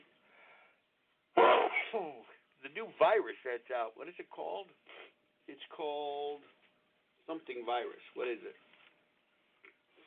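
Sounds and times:
sneeze: 0:01.4 - 0:02.3
speech: 0:01.9 - 0:06.6, 0:07.3 - 0:08.6.

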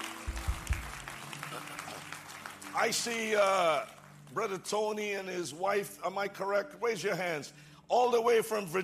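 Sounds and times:
church audience applause: 0:00.0 - 0:04.5
speech: 0:02.8 - 0:08.8.

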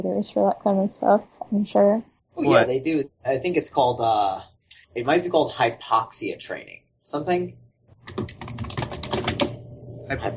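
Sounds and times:
speech: 0:00.0 - 0:08.3, 0:10.1 - 0:10.3
rapid typing on a loud computer keyboard: 0:08.0 - 0:09.6.

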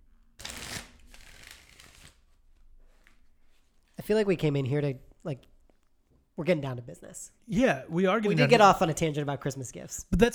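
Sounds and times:
deck of tarot cards being shuffled: 0:00.4 - 0:02.4
speech: 0:04.1 - 0:05.5, 0:06.4 - 0:10.3.

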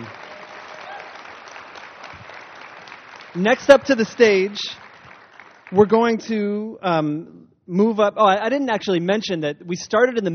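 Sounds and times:
crowd applauding: 0:00.0 - 0:06.2
speech: 0:03.4 - 0:04.8, 0:05.7 - 0:10.3.

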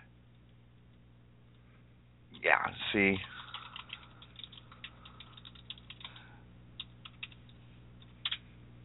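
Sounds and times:
low electrical hum: 0:00.0 - 0:08.8
speech: 0:02.4 - 0:03.3
typing on a computer keyboard: 0:03.2 - 0:08.4.

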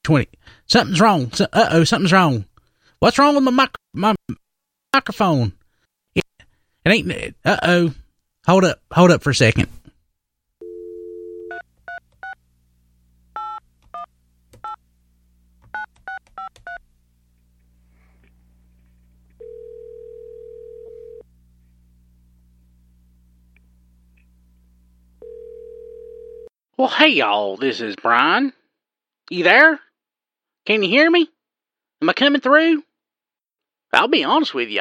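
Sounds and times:
speech: 0:00.1 - 0:05.6, 0:06.8 - 0:09.8, 0:26.8 - 0:28.6, 0:29.3 - 0:29.8, 0:30.6 - 0:31.3, 0:32.0 - 0:32.9, 0:33.9 - 0:34.7
telephone dial tone: 0:10.6 - 0:12.4, 0:19.4 - 0:21.2, 0:25.2 - 0:26.5.

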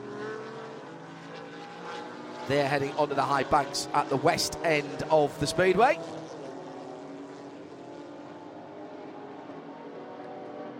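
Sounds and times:
engines of several racing cars on a speedway: 0:00.0 - 0:10.7
speech: 0:02.5 - 0:06.2.

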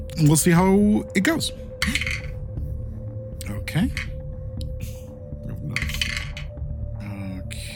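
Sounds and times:
speech: 0:00.2 - 0:02.1
dice rattling across a hard tabletop: 0:01.8 - 0:02.3, 0:03.9 - 0:04.1, 0:05.8 - 0:06.5.

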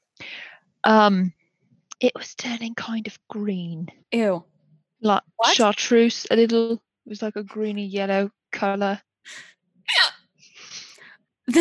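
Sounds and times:
speech: 0:00.8 - 0:01.4, 0:02.0 - 0:10.1
single sharp hiccup: 0:09.9 - 0:10.2.

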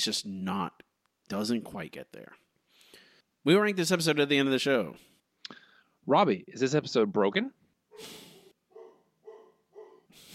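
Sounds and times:
speech: 0:00.0 - 0:02.4, 0:03.4 - 0:08.2
dog barking: 0:07.9 - 0:10.2.

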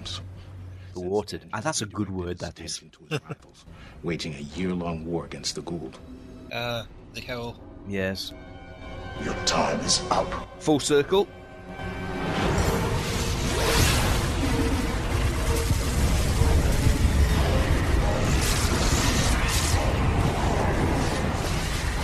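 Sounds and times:
speech: 0:01.0 - 0:12.1
cinematic explosion sound effect from a film: 0:12.2 - 0:22.0
rushing whooshing explosion debris: 0:12.2 - 0:22.0.

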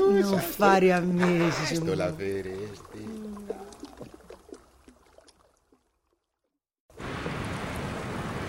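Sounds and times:
speech: 0:00.1 - 0:03.2
water splashing in waves from a moving boat: 0:00.7 - 0:08.4
churning water rushing: 0:01.5 - 0:05.8, 0:06.9 - 0:08.4.

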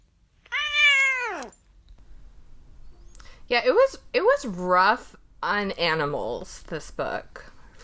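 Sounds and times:
quiet noise: 0:00.0 - 0:07.8
pet cat meowing: 0:00.5 - 0:01.5
speech: 0:03.5 - 0:07.5.

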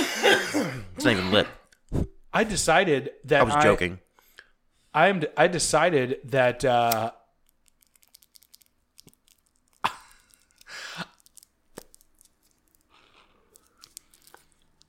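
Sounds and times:
speech: 0:00.6 - 0:04.0, 0:05.0 - 0:07.2
fingers rustling on the loose rolling paper of an unlit pre-roll: 0:07.5 - 0:14.8.

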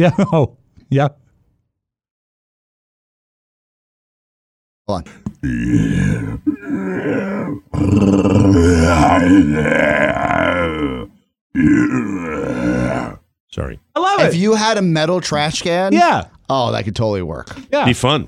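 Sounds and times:
speech: 0:00.0 - 0:01.2, 0:04.9 - 0:18.2
human voice imitating an animal roar for a movie: 0:05.4 - 0:13.3.

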